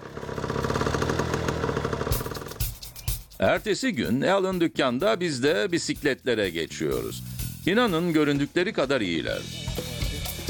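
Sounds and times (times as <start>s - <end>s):
small engine idling after carburetor refit: 0.0s - 2.9s
speech: 3.4s - 9.6s.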